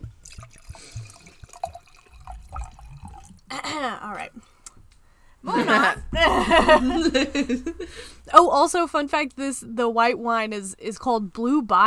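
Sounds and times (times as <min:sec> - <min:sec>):
vodka and diet lemon-lime soda pouring and splashing into a glass: 0:00.0 - 0:03.5
small drips and glugs: 0:00.0 - 0:04.0
speech: 0:03.8 - 0:04.5, 0:05.4 - 0:11.8
laughter: 0:05.4 - 0:08.1.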